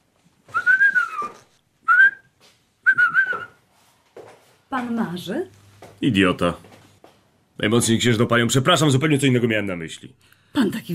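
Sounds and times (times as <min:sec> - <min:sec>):
man whistling a simple tune: 0:00.5 - 0:03.6
speech: 0:04.7 - 0:06.7, 0:07.6 - 0:10.9.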